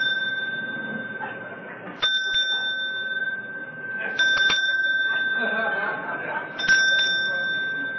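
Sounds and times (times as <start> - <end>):
faint murmur: 0.0 - 7.9
small bell ringing: 0.0 - 7.9
laughter: 4.0 - 7.9.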